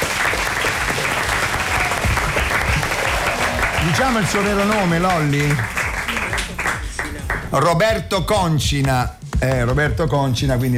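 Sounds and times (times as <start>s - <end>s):
audience applause: 0.0s - 7.5s
speech: 3.9s - 5.8s, 7.5s - 10.7s.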